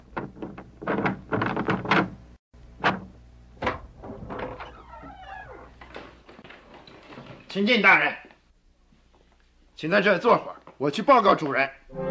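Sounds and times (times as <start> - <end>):
door hinges creaking: 0.0 - 2.2, 2.8 - 7.6
speech: 7.6 - 8.2, 9.8 - 12.0.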